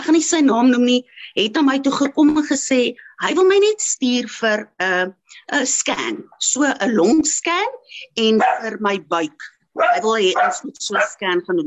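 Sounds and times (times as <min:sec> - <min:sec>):
speech: 0:00.2 - 0:11.6
dogs barking and yelping: 0:07.8 - 0:08.8, 0:09.8 - 0:11.3.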